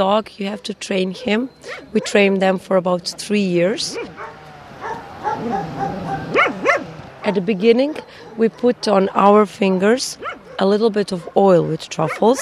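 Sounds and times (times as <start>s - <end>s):
speech: 0.0s - 4.4s, 7.2s - 12.3s
truffle-hunting dog in Istria barking and whining: 1.2s - 2.3s, 3.9s - 9.0s, 10.2s - 12.3s.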